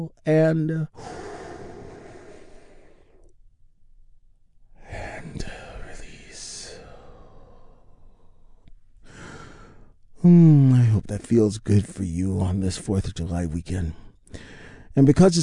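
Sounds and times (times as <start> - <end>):
speech: 0.0 - 1.2, 10.2 - 15.4
people breathing deeply during a guided group meditation: 1.0 - 3.3, 6.8 - 10.0, 14.3 - 14.9.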